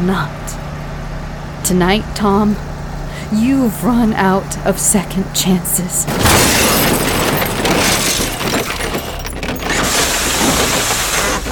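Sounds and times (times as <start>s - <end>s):
speech: 0.0s - 0.6s, 1.6s - 2.7s, 3.3s - 6.6s
glass shattering in a car crash: 6.1s - 11.3s
car crash debris crunching and grinding: 6.1s - 11.4s
car crash impact: 6.1s - 11.4s.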